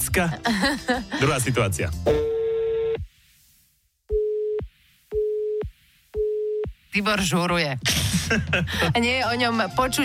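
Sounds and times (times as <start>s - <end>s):
speech: 0.2s - 2.3s, 7.0s - 10.0s
buzzy telephone call signal tone: 2.1s - 3.1s, 4.2s - 4.6s, 5.2s - 6.7s.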